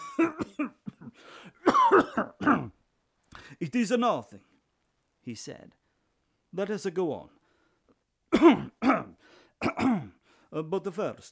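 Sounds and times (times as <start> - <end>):
man coughing in a prolonged fit: 0.0 - 2.8, 8.3 - 10.2
speech: 0.2 - 0.8, 3.7 - 4.5, 5.3 - 5.8, 6.5 - 7.4, 8.3 - 9.0, 9.7 - 11.3.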